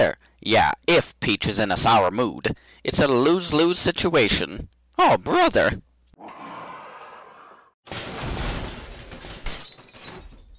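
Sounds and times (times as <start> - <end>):
speech: 0.0 - 6.4
loud crash into a castle: 7.9 - 9.6
breaking and scattering debris: 7.9 - 10.5
glass shattering: 7.9 - 10.5.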